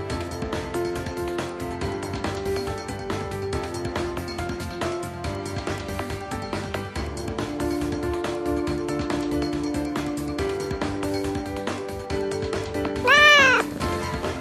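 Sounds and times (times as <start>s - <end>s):
music: 0.0s - 14.3s
cat meowing: 13.0s - 13.7s.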